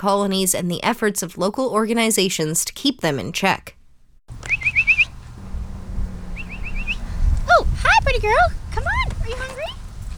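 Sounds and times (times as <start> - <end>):
speech: 0.0 - 3.8, 8.2 - 8.6
low traffic rumble: 4.3 - 10.1
person whistling rising chirps to call cats for dinner: 4.4 - 5.2, 6.4 - 7.1.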